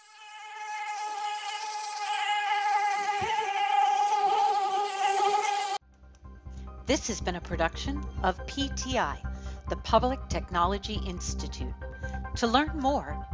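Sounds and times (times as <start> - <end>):
mosquito whine while hovering: 0.0 - 5.8
speech: 6.9 - 13.3.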